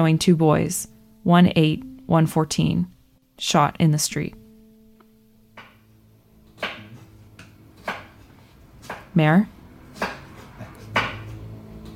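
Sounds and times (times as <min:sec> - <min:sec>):
speech: 0:00.0 - 0:04.4, 0:09.2 - 0:09.6
knife chopping food on a cutting board: 0:06.6 - 0:09.2, 0:09.9 - 0:11.4.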